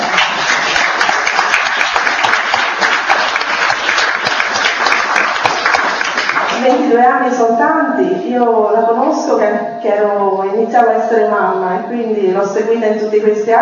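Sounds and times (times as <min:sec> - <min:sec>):
audience applause: 0:00.0 - 0:06.6
speech: 0:07.0 - 0:13.6.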